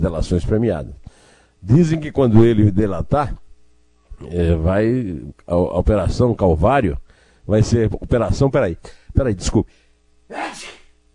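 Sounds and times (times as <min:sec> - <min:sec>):
speech: 0:00.0 - 0:03.4, 0:04.2 - 0:10.8
faint steady hum: 0:00.0 - 0:11.1
person sneezing: 0:10.3 - 0:11.0.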